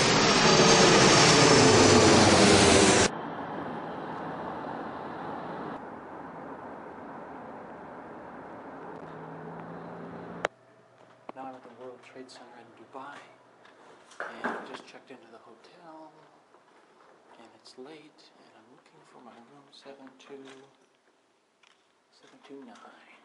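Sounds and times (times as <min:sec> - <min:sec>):
airplane jet engine roar in flight: 0:00.0 - 0:10.5
speech: 0:17.4 - 0:20.8, 0:22.2 - 0:23.1.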